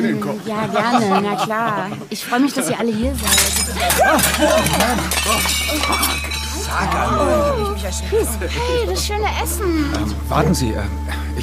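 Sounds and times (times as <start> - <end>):
several voices exclaiming and chattering: 0.0 - 11.1
laughter: 0.0 - 11.3
speech: 0.0 - 11.4
tray of plates crashing to the floor and shattering: 3.0 - 7.7.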